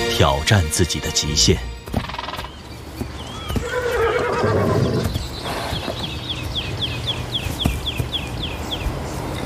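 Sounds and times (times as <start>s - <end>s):
speech: 0.2s - 2.2s
faint hoof clops: 1.8s - 9.4s
herd of wild horses neighing: 1.9s - 6.2s.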